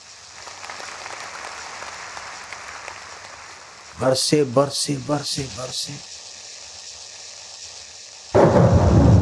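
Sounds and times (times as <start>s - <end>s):
heavy rain: 0.0s - 6.7s, 8.2s - 9.1s
man speaking: 4.0s - 6.0s
roll of thunder: 8.4s - 9.1s.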